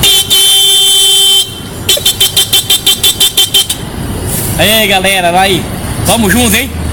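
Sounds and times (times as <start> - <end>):
man imitating a car horn with his voice: 0.0 - 3.8
speech: 4.6 - 6.8.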